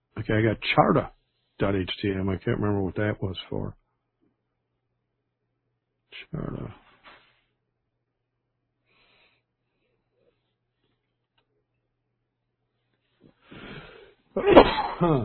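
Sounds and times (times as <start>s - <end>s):
speech: 0.2s - 3.8s, 6.1s - 6.8s, 14.4s - 15.2s
person sneezing: 14.4s - 15.2s.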